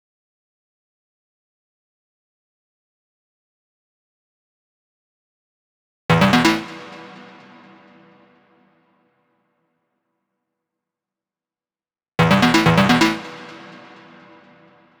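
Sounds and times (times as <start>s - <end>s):
electro synth arpeggio in A minor: 6.1s - 8.2s, 12.2s - 14.8s.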